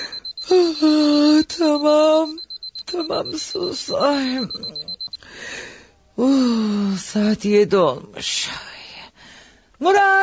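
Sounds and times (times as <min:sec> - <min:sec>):
alarm clock ringing at home: 0:00.0 - 0:05.3
speech: 0:01.5 - 0:05.6, 0:06.2 - 0:08.8, 0:09.8 - 0:10.2.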